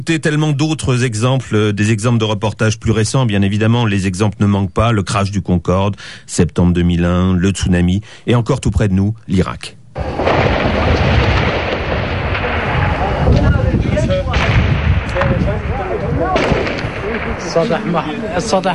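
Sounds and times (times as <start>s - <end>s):
speech: 0.0s - 10.8s, 17.5s - 18.7s
Kalashnikov fire at night in a street in central Baghdad: 10.0s - 18.4s
voices and chatter: 11.9s - 18.7s.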